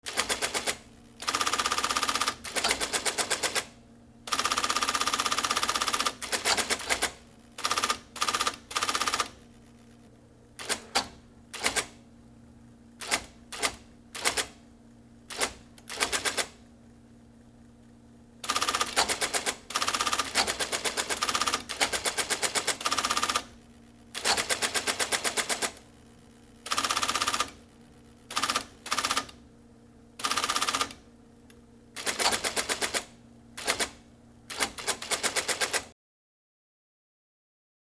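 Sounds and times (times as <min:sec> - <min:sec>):
electric typewriter typing: 0:00.0 - 0:03.7, 0:04.3 - 0:09.4, 0:10.6 - 0:12.0, 0:13.0 - 0:14.6, 0:15.3 - 0:16.6, 0:18.4 - 0:23.5, 0:24.2 - 0:25.8, 0:26.7 - 0:27.6, 0:28.3 - 0:29.4, 0:30.2 - 0:31.0, 0:32.0 - 0:35.9.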